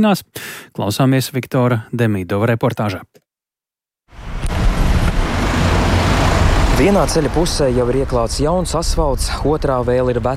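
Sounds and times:
speech: 0.0 - 3.2, 6.8 - 10.3
car engines and tire noise of busy city traffic: 4.2 - 10.3.

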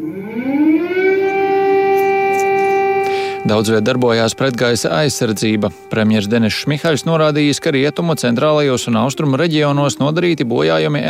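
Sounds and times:
air raid warning siren wailing: 0.0 - 11.0
speech: 3.5 - 11.0.

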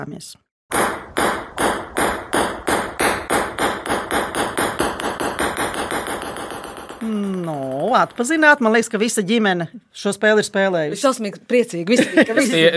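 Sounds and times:
speech: 0.0 - 1.0, 7.0 - 12.7
table tennis ball bouncing on a hard surface: 0.7 - 9.0
laughter: 11.9 - 12.7.

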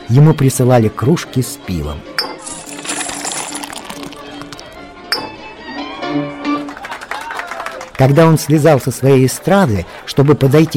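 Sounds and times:
speech: 0.1 - 2.2, 8.0 - 10.7
silver coins dropping and clinking into a musician's pockets: 2.4 - 4.8.

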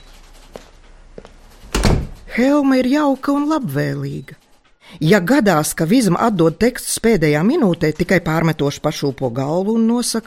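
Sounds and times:
door swinging open with thump and rustle: 1.6 - 2.4
door latch clicks: 1.7 - 2.3
speech: 2.4 - 4.4, 5.0 - 10.2.

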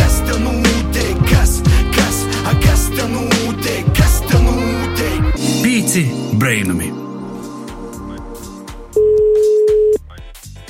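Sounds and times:
rhythmic music: 0.0 - 10.6
speech: 6.0 - 7.1
telephone call dialing tone: 9.0 - 10.0.

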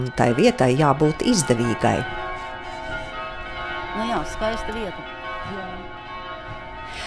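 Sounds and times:
speech: 0.0 - 2.2, 4.0 - 6.0
bells of Riga Cathedral ringing in Riga Latvia: 0.0 - 7.0.

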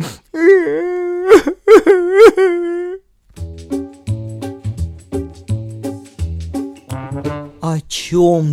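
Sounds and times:
person wailing and sobbing: 0.0 - 3.1
speech: 7.9 - 8.5.

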